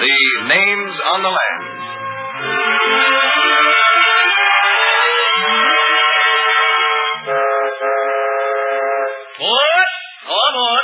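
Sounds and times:
low rumbling locomotive: 0:00.0 - 0:09.7
speech: 0:00.5 - 0:01.7, 0:02.4 - 0:03.8
loud sustained train horn blaring: 0:01.4 - 0:09.3.

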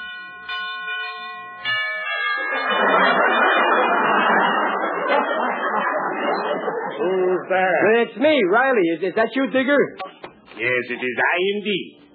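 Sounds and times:
doorbell chiming at an undertaker's house: 0:00.0 - 0:05.6
laughter: 0:02.4 - 0:08.6
speech: 0:02.5 - 0:03.4, 0:07.0 - 0:10.0, 0:10.6 - 0:12.1.

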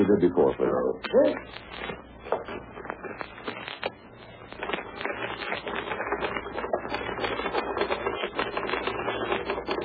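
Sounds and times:
speech: 0:00.2 - 0:02.6
typewriter typing: 0:05.1 - 0:09.8.

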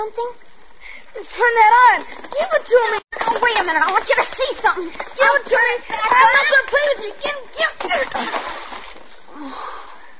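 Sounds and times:
speech: 0:00.0 - 0:00.5, 0:01.1 - 0:08.6
churning splattering water: 0:02.3 - 0:09.3
object dropped into water with a short splash: 0:07.9 - 0:09.2.

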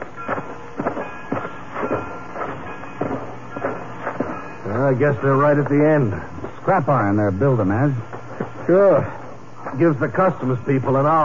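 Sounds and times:
freight train rolling along rails on the Austria-Hungarian border: 0:00.0 - 0:05.7
speech: 0:04.9 - 0:08.1, 0:08.7 - 0:11.2.

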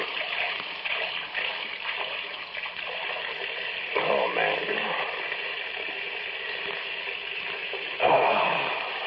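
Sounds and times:
water pouring into a drinking glass in a small kitchen: 0:00.0 - 0:09.0
man murmuring: 0:08.0 - 0:09.0.

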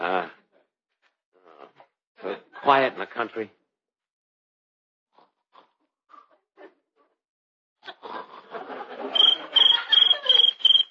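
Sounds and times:
speech: 0:02.7 - 0:03.6
laughter: 0:07.9 - 0:10.8
little cricket chirping shrilly in the countryside: 0:09.1 - 0:10.8.

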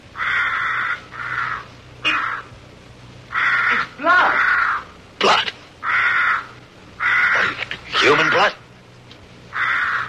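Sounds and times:
crow cawing: 0:00.1 - 0:02.5, 0:03.3 - 0:05.0, 0:05.8 - 0:08.6, 0:09.5 - 0:10.0.

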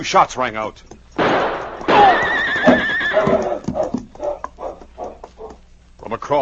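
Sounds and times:
speech: 0:00.0 - 0:01.4, 0:06.1 - 0:06.4
horse hoofbeats clopping: 0:00.5 - 0:06.0
horse whinnying: 0:01.8 - 0:05.6.

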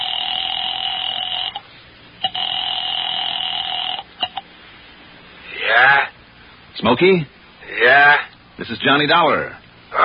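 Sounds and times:
telephone ringing in electronic bursts: 0:00.0 - 0:01.6, 0:02.2 - 0:04.1
speech: 0:06.8 - 0:10.0.

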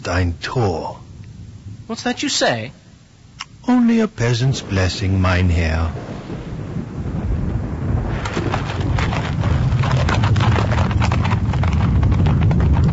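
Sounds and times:
speech: 0:00.0 - 0:01.0, 0:01.9 - 0:02.8, 0:03.6 - 0:06.1
low rumbling background: 0:00.0 - 0:12.9
team of horses' hooves clip-clopping on a road: 0:08.1 - 0:12.9.

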